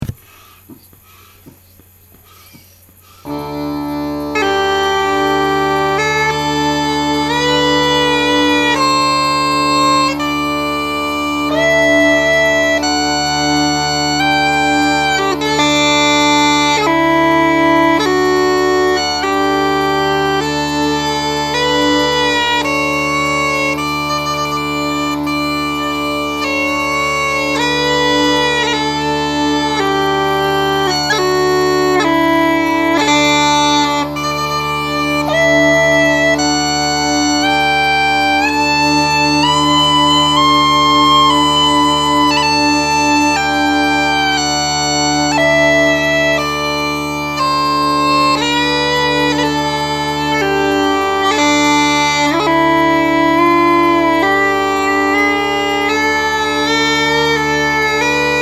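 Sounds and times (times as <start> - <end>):
bagpipe chanter: 0.0 - 58.4.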